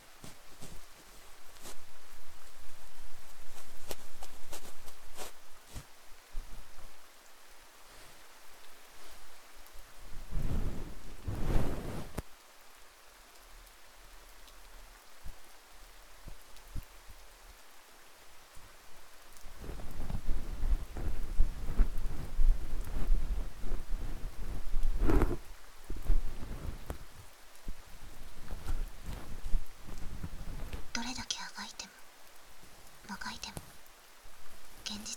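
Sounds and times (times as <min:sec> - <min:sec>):
steady rain: 0:00.0 - 0:35.1
speech: 0:31.0 - 0:31.3.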